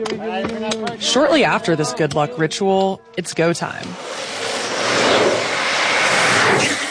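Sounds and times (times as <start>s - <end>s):
speech: 0.0s - 4.4s
downhill skateboards rolling fast on road: 3.9s - 6.8s.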